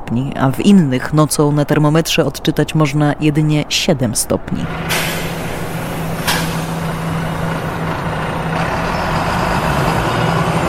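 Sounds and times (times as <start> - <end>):
bus engine droning heard from inside the bus: 0.0 - 10.6
road noise: 0.0 - 10.6
speech: 0.1 - 5.2
sharp hiss of bus air brakes: 4.7 - 8.0.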